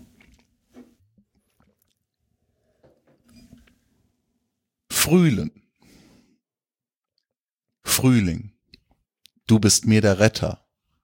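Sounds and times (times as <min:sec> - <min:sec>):
soft wet slurping and swallowing of a sip of water: 0:00.0 - 0:02.9
speech: 0:05.1 - 0:05.6, 0:08.0 - 0:08.5, 0:09.5 - 0:10.6.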